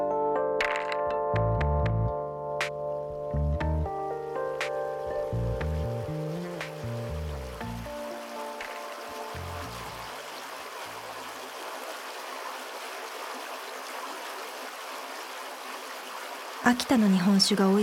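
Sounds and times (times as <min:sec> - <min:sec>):
soft low musical tone: 0:00.0 - 0:10.2
river water flowing: 0:04.2 - 0:17.8
speech: 0:16.7 - 0:17.8.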